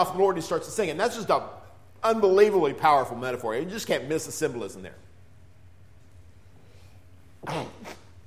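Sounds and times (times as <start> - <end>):
speech: 0.0 - 5.0, 7.4 - 7.7
hum: 0.0 - 8.2
person sneezing: 7.4 - 8.2.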